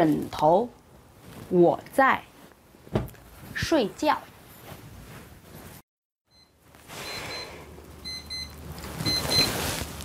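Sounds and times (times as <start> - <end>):
speech: 0.0 - 0.8, 1.5 - 2.3, 3.6 - 4.3
alarm clock ringing with rapid high-pitched electronic beeps: 6.3 - 10.0.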